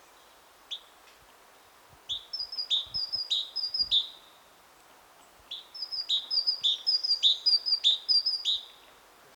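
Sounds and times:
great tit Parus major two-note calls: 0:02.1 - 0:04.3, 0:05.2 - 0:08.8.

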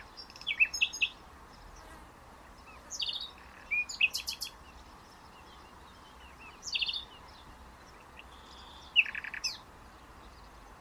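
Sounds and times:
Luscinia megarhynchos common nightingale song with trills and pulsed notes: 0:00.0 - 0:10.7
steady background hiss: 0:00.0 - 0:10.7.

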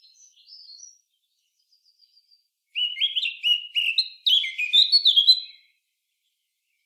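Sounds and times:
Eurasian blackcap Sylvia atricapilla whistled song phrase: 0:00.0 - 0:01.0, 0:02.8 - 0:05.8.

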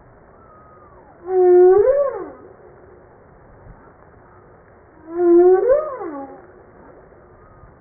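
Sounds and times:
low background hiss: 0:00.0 - 0:07.7
humpback whale song moaning units: 0:00.3 - 0:02.8, 0:05.0 - 0:07.7.

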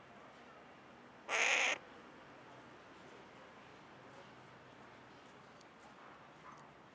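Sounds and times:
Corvus corone carrion crow giving a rasping grating caw: 0:01.3 - 0:01.8.

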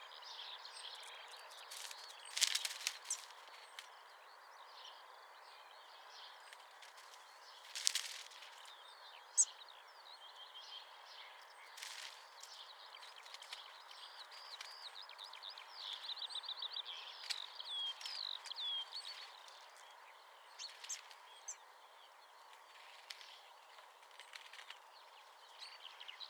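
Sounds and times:
common chaffinch Fringilla coelebs song: 0:00.1 - 0:04.7, 0:06.0 - 0:26.2
bird chirps and clicks: 0:00.8 - 0:04.0, 0:11.6 - 0:21.6, 0:22.5 - 0:26.2.

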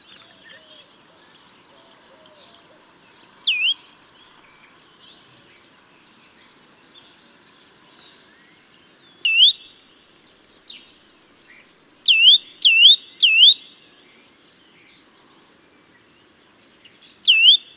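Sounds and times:
Eurasian nuthatch Sitta europaea calls: 0:00.0 - 0:03.9, 0:12.1 - 0:13.6, 0:17.3 - 0:17.7.

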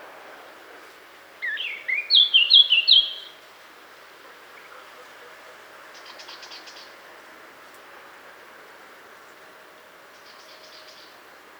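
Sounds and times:
faint steady background hiss: 0:00.0 - 0:11.5
Eurasian blackcap Sylvia atricapilla song with fluty whistled slurs: 0:01.4 - 0:03.4.

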